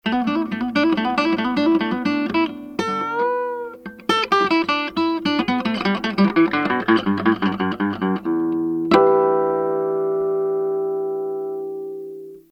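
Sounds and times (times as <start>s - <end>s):
guitar solo through a pickup: 0.0s - 12.4s.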